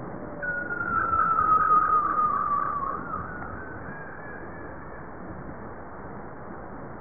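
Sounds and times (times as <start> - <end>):
underwater background noise: 0.0 - 6.9
bowhead whale moaning call: 0.2 - 5.1.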